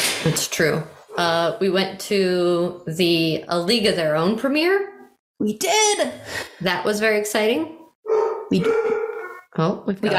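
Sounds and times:
speech: 0.2s - 9.0s, 9.6s - 10.1s
newly adopted dog barking and whining: 8.0s - 9.5s
dog's drawn-out wavering howl-like cry: 8.1s - 9.4s.

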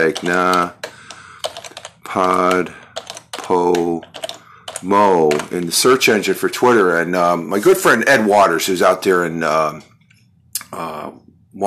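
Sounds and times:
speech: 0.0s - 0.9s, 2.1s - 2.8s, 3.5s - 9.9s, 10.7s - 11.6s
rapid typing on a computer keyboard: 0.0s - 5.6s.

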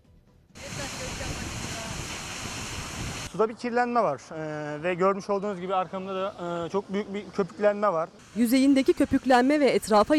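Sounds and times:
waterfall pouring into the Mediterranean Sea at Lara in Turkey: 0.6s - 3.3s
speech: 3.4s - 10.1s.

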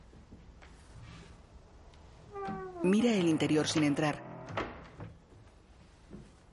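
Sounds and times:
door opening: 2.3s - 5.2s
speech: 2.8s - 4.3s.

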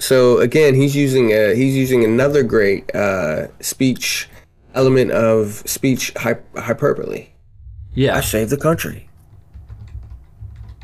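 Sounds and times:
speech: 0.0s - 7.3s, 8.0s - 9.1s
steady low hum: 7.3s - 10.6s
typing on a computer keyboard: 9.2s - 10.8s.

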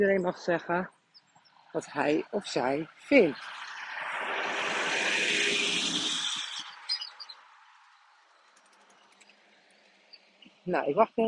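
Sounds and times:
speech: 0.0s - 1.0s, 1.7s - 3.6s, 10.6s - 11.2s
heavy truck rumbling past: 2.3s - 10.1s.

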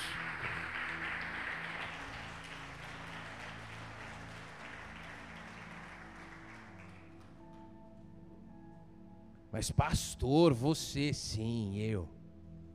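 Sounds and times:
crowd applauding: 0.0s - 7.7s
low sustained musical tones: 0.0s - 12.7s
speech: 9.5s - 12.2s.

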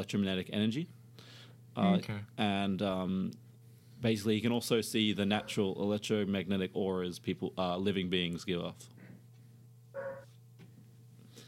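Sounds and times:
speech: 0.0s - 3.4s, 4.0s - 9.0s
steady low hum: 0.0s - 11.4s
dog short tonal whine or yelp: 10.0s - 10.3s.

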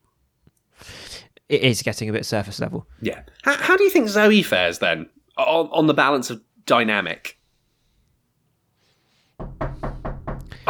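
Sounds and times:
speech: 1.5s - 7.4s
knocking on a door: 9.4s - 10.6s.

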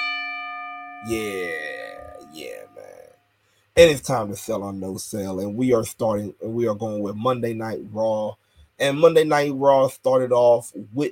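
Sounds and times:
bell rung by a bell ringer: 0.0s - 3.1s
speech: 1.0s - 3.2s, 3.8s - 11.1s.

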